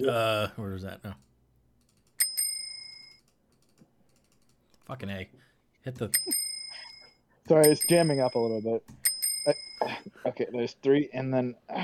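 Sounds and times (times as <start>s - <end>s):
speech: 0.0s - 1.3s, 4.9s - 6.5s, 7.5s - 11.8s
bicycle bell ringing: 2.2s - 3.3s, 6.1s - 10.0s.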